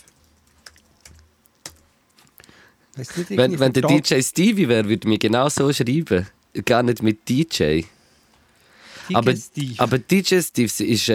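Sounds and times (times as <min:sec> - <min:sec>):
computer keyboard typing a web search: 0:00.0 - 0:01.9
speech: 0:03.0 - 0:08.0, 0:09.1 - 0:11.1.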